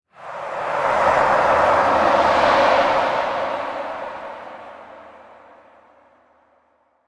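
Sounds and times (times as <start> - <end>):
sports hype swell: 0.2 - 5.6.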